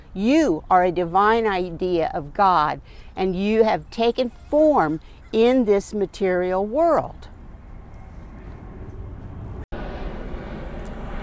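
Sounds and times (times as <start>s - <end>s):
speech: 0.2s - 7.3s
broad low droning rumble: 7.3s - 11.2s.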